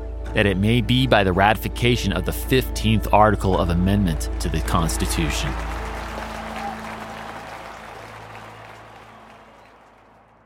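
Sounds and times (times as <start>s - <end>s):
speech: 0.4s - 5.8s
crowd clapping: 3.4s - 10.4s
crowd cheering: 4.4s - 10.4s.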